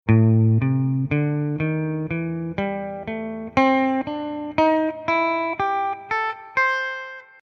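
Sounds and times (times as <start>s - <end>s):
blues scale in A: 0.1s - 7.4s.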